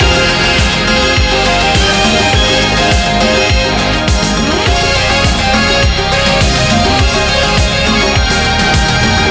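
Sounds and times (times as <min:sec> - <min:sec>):
big win jingle loop: 0:00.0 - 0:09.3.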